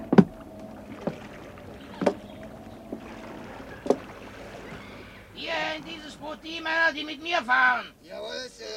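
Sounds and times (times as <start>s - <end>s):
wooden knocks and thumps against rowing boats on water as men climb in: 0.0s - 6.6s
faint watery background: 0.0s - 8.7s
speech: 6.2s - 8.7s.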